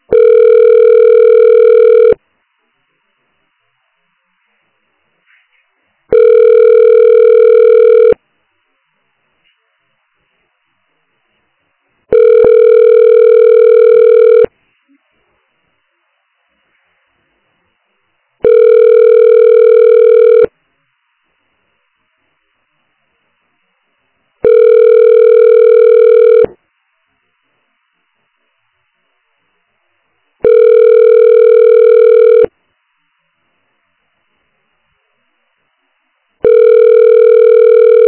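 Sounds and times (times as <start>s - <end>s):
telephone ringback tone while waiting on the line: 0.1s - 2.2s, 6.1s - 8.2s, 12.1s - 14.5s, 18.4s - 20.5s, 24.4s - 26.5s, 30.4s - 32.5s, 36.4s - 38.0s.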